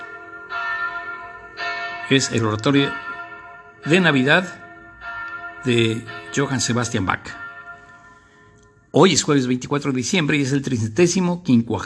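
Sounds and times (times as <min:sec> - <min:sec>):
church bells ringing: 0:00.0 - 0:11.8
speech: 0:02.1 - 0:03.1, 0:03.8 - 0:04.6, 0:05.6 - 0:07.4, 0:09.0 - 0:11.8.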